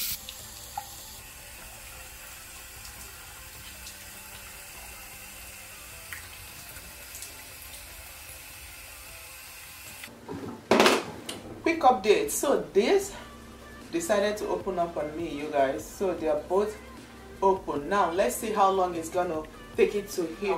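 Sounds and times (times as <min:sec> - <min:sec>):
bathroom tap water running: 0:00.0 - 0:10.1
speech: 0:11.7 - 0:13.2, 0:13.9 - 0:20.5.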